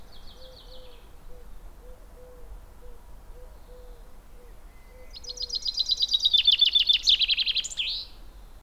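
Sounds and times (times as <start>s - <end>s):
common chaffinch Fringilla coelebs singing: 0.0s - 1.5s, 3.6s - 8.2s.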